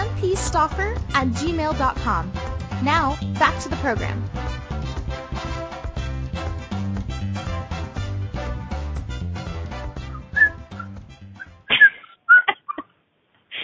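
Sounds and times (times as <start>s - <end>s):
music: 0.0s - 11.8s
speech: 0.2s - 4.6s
short bright high-pitched whistles: 10.0s - 11.5s.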